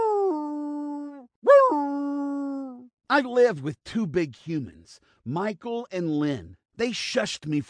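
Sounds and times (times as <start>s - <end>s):
dog howling in response to a siren: 0.0s - 2.8s
speech: 3.1s - 7.6s.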